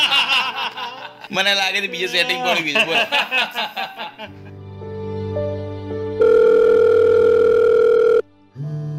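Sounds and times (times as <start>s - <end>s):
laughter: 0.0s - 4.6s
speech: 1.3s - 4.5s
telephone busy tone on a call to a busy number: 6.2s - 8.2s.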